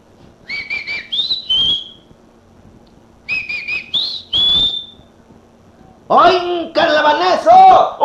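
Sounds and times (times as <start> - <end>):
person whistling a call to summon someone: 0.4 - 2.1, 3.3 - 5.0
speech: 6.1 - 8.0.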